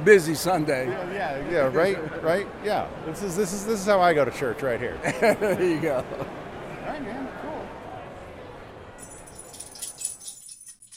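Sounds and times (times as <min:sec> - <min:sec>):
speech: 0:00.0 - 0:07.5
laughter: 0:05.0 - 0:06.4
collar tags jingling as a puppy scratches itself: 0:09.0 - 0:10.9.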